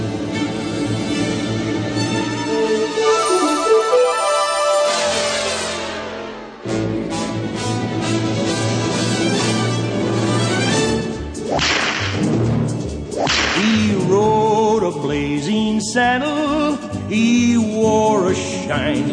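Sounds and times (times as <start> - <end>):
orchestral song intro with loud brass and strings: 0.0 - 19.1
sharp whip cracks: 11.4 - 12.4, 13.1 - 14.0.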